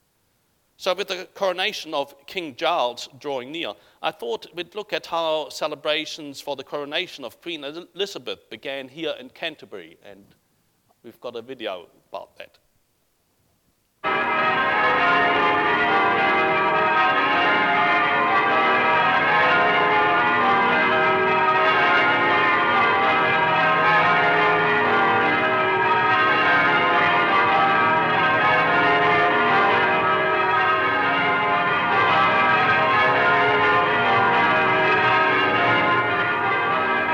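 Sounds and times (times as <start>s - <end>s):
speech: 0.8s - 10.4s, 11.0s - 12.6s
church bells ringing for a coronation: 14.0s - 37.1s.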